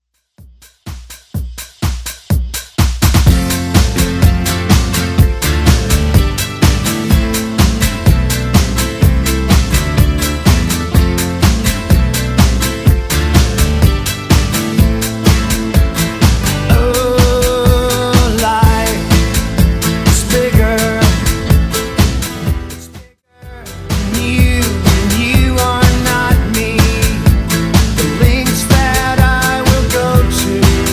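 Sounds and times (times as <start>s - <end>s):
90s pop rock music: 0.9s - 30.9s.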